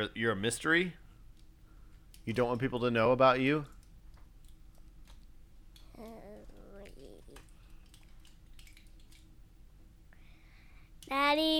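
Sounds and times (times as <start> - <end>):
speech: 0.0 - 1.0, 2.3 - 3.8, 11.1 - 11.5
computer keys tapping: 6.0 - 9.3.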